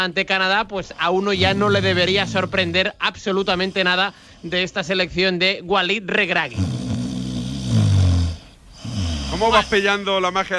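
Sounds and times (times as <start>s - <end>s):
speech: 0.0s - 6.8s, 9.3s - 10.5s
loud snoring with deep rumbling drone: 1.3s - 4.7s, 6.5s - 10.0s.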